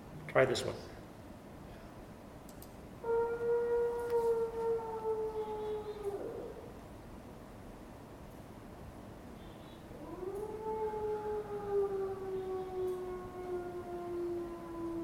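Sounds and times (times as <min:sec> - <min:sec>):
speech: 0:00.4 - 0:01.0
wolf howling in a film clip: 0:03.0 - 0:06.8, 0:09.9 - 0:15.0.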